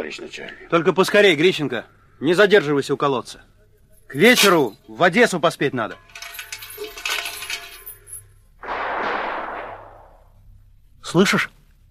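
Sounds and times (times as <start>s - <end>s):
speech: 0.0s - 3.5s, 4.1s - 6.2s, 11.1s - 11.6s
distant gunfire: 8.6s - 10.4s.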